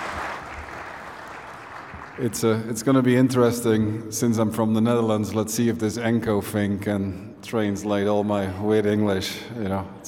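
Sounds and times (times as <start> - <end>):
conference audience clapping: 0.0 - 2.6
speech: 2.2 - 10.0.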